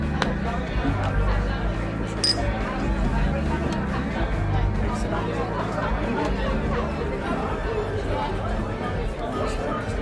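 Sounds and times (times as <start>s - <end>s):
chatter of many voices in a bar: 0.0s - 10.0s
glasses or cutlery clinking: 2.2s - 2.5s.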